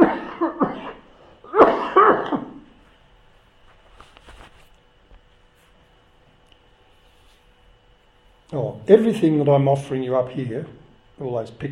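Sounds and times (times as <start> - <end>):
man coughing: 0.0 - 2.8
speech: 8.5 - 11.7.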